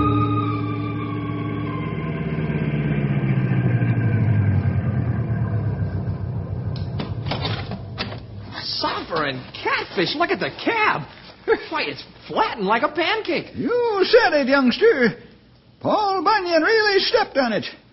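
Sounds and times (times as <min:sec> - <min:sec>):
car engine revving: 0:00.2 - 0:08.5
speech: 0:10.0 - 0:15.2, 0:15.8 - 0:17.8.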